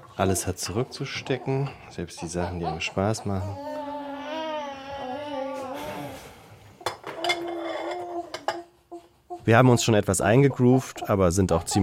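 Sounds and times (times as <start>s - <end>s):
speech: 0.2s - 3.7s, 9.5s - 11.8s
dishes and cutlery clattering in a kitchen: 0.6s - 2.8s, 6.8s - 8.8s
baby wailing cry: 1.4s - 6.2s, 7.0s - 10.0s.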